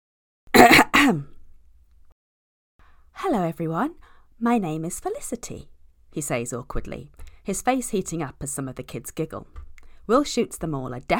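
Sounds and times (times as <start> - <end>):
speech: 0.6 - 1.3, 3.2 - 11.1
rasping throat clearing: 0.6 - 1.4.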